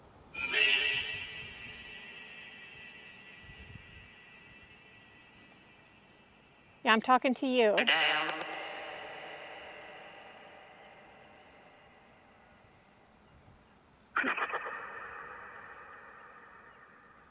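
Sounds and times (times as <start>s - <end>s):
metallic washy spring reverb tail: 0.4s - 6.8s, 7.8s - 12.6s
speech: 6.8s - 8.4s.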